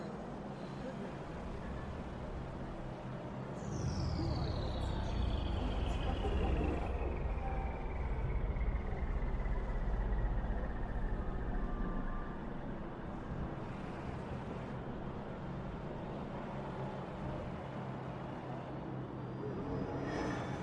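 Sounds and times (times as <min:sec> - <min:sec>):
steady low city traffic rumble: 0:00.2 - 0:20.6
bright descending whine: 0:03.7 - 0:12.9.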